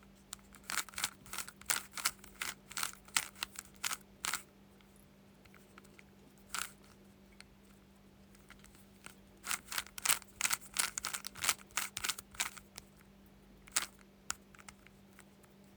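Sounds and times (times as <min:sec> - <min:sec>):
steady low hum: 0:00.0 - 0:15.7
Rubik's cube twisted in sharp plastic clicks: 0:00.6 - 0:04.4, 0:06.5 - 0:06.8, 0:09.4 - 0:12.9, 0:13.7 - 0:15.3.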